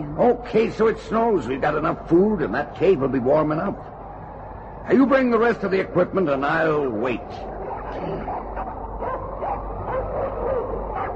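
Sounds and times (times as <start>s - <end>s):
speech: 0.0s - 4.0s, 4.9s - 8.6s
steady windy rumble: 0.0s - 11.1s
pack of sled dogs barking, yipping and whining: 7.4s - 11.1s.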